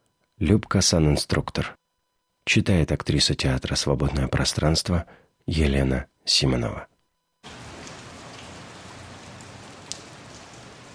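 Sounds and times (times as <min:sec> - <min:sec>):
speech: 0:00.4 - 0:01.8, 0:02.4 - 0:07.6
steady rain falling: 0:07.4 - 0:10.9.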